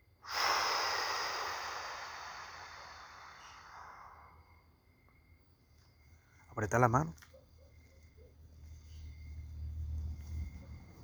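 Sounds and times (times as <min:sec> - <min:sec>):
exhaling through the nose in a guided breathing exercise: 0:00.2 - 0:04.6
speech: 0:06.6 - 0:07.3.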